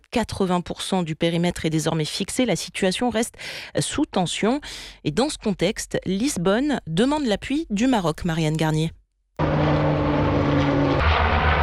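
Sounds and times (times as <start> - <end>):
speech: 0.1 - 9.6
Moroccan Canadair amphibious water-bombing aircraft propeller-engine roar: 9.4 - 11.6.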